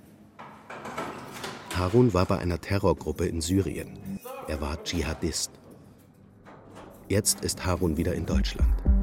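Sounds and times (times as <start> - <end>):
door opening in a quiet windowless visiting room: 0.4 - 2.5, 4.3 - 7.9
speech: 1.8 - 5.6, 7.1 - 9.0.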